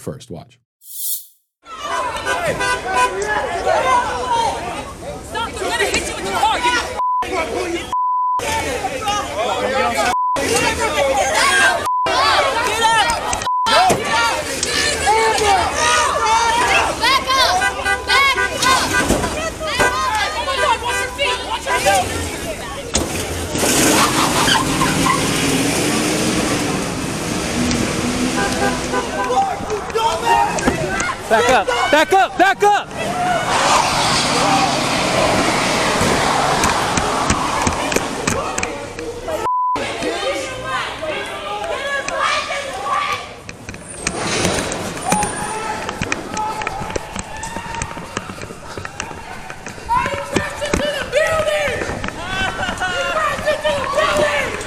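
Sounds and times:
speech: 0.0 - 1.2, 2.2 - 6.6, 7.3 - 14.5, 31.3 - 35.4
mob shouting and chattering while swarming a truck: 2.0 - 54.6
truck revving and driving away: 21.7 - 30.6, 32.8 - 39.4.

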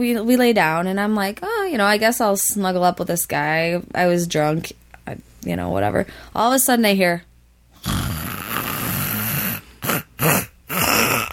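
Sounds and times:
speech: 0.0 - 7.3
man's voice imitating a man snoring in bed: 7.8 - 11.3.

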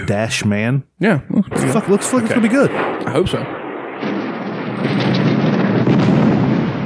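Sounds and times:
speech: 0.0 - 4.2, 4.8 - 5.3
loud rumbling explosion in a movie trailer: 1.5 - 6.8.

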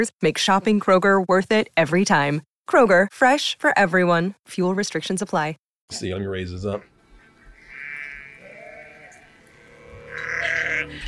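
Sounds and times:
speech: 0.0 - 6.9, 10.2 - 11.0
goat bleating in wavering drawn-out cries: 7.4 - 11.0.

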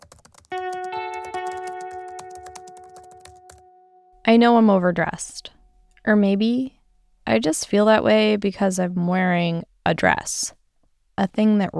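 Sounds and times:
fingers typing on a computer keyboard: 0.0 - 3.6
steady sustained musical tone: 0.5 - 5.8
speech: 4.3 - 10.6, 11.2 - 11.7.

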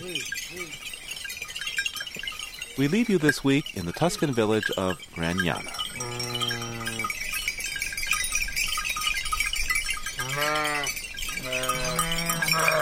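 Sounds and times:
many small sheep bells jingling: 0.0 - 12.7
speech: 2.8 - 6.2
belled sheep bleating: 10.2 - 12.7.

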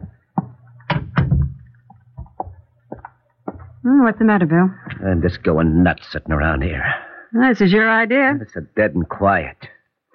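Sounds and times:
low steady hum: 0.0 - 9.8
door shutting with thuds: 0.9 - 1.6
speech: 3.8 - 9.7.

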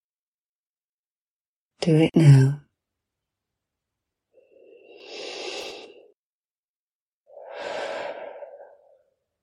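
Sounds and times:
speech: 1.8 - 2.6
deep breaths: 4.3 - 6.2, 7.3 - 9.2.

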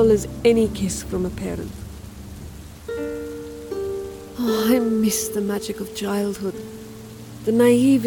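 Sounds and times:
speech: 0.0 - 1.8, 4.4 - 6.8, 7.4 - 8.0
steady rain: 0.0 - 8.0.

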